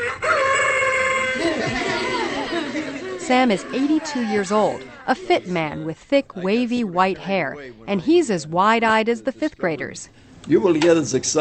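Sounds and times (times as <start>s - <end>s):
solar-powered toy rooster crowing electronically: 0.0s - 2.2s
laughter: 1.1s - 8.3s
speech: 3.3s - 11.3s.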